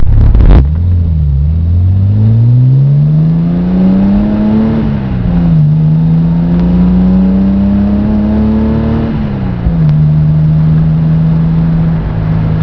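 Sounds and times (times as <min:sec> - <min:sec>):
classic Triumph TR6 car engine with tuned intake: 0:00.0 - 0:12.6.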